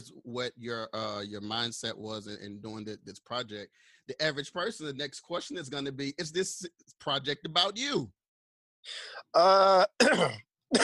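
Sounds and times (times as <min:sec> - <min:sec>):
speech: 0:00.3 - 0:08.2, 0:08.8 - 0:10.8
man clearing his throat: 0:09.4 - 0:10.8.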